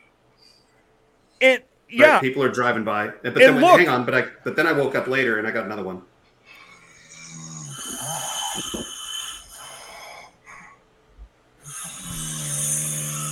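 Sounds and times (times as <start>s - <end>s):
speech: 1.4s - 6.1s
several people snoring together: 6.6s - 10.7s, 11.6s - 13.3s.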